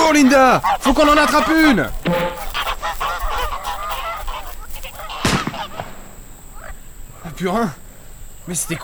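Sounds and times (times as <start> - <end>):
speech: 0.1 - 2.3, 7.4 - 7.8, 8.5 - 8.8
flock of released wild geese honking: 0.1 - 5.1.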